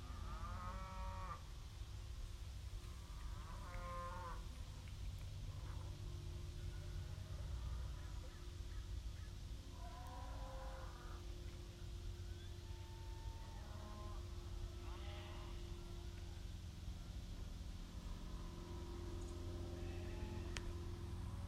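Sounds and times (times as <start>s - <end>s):
cows mooing: 0.0s - 1.5s, 2.8s - 21.4s.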